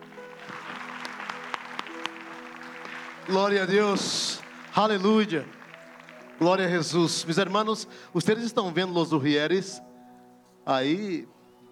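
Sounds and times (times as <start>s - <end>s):
audience applauding: 0.0s - 7.9s
speech: 3.2s - 5.6s, 6.4s - 9.9s, 10.6s - 11.3s.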